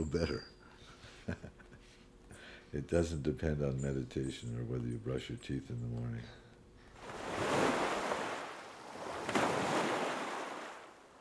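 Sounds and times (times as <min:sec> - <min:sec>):
speech: 0:00.0 - 0:00.6, 0:01.3 - 0:01.6, 0:02.7 - 0:06.4
ocean waves washing onto a beach: 0:07.0 - 0:11.2.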